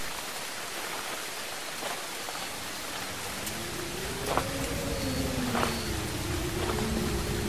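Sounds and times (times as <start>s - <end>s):
steady rain: 0.0s - 7.4s
faint wavering low drone: 2.5s - 7.4s.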